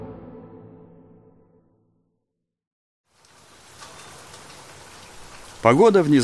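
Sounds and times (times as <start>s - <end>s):
heavy rain pouring down over a bus stop canopy: 3.1s - 6.2s.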